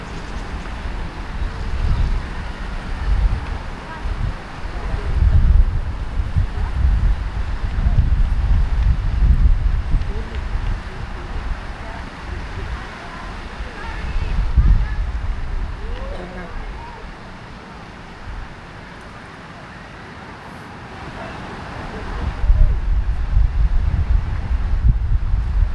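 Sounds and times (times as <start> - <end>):
faint children's voices: 0.0 - 8.0, 9.9 - 20.0
people speaking: 0.0 - 24.6
fountain spraying water: 0.0 - 25.7
rumbling low gusts: 0.0 - 25.7.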